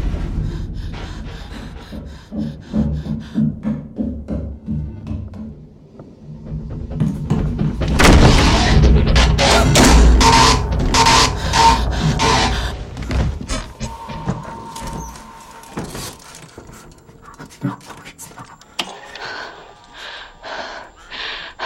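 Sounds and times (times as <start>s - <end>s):
heavy breathing: 0.1s - 4.2s, 10.4s - 21.6s
bedroom door creaking open with a wooden groan: 7.8s - 19.6s.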